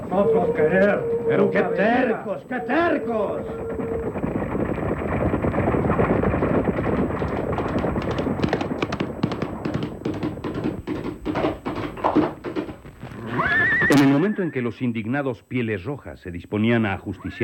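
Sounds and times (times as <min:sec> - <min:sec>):
horse whinnying: 0:00.0 - 0:05.0, 0:13.1 - 0:14.7
busy rumble: 0:00.0 - 0:11.0
horse hooves clip-clopping: 0:00.0 - 0:14.2
speech: 0:00.1 - 0:04.4, 0:14.4 - 0:17.4.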